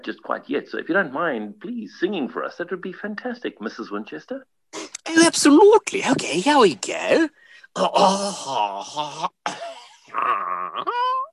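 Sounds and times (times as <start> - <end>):
speech: 0.0 - 9.4
person clearing throat: 7.8 - 11.0.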